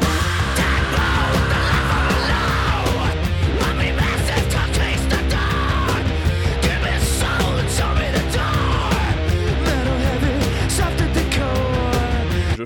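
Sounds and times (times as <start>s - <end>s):
pounding rock drums: 0.0s - 12.4s
heavy distorted rock guitars: 0.0s - 12.6s
raw screamed male rock vocal: 0.0s - 12.6s.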